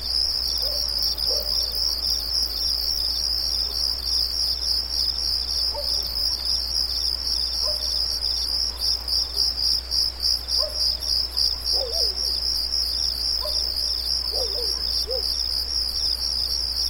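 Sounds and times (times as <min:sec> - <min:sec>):
crickets trilling at night: 0:00.0 - 0:16.8.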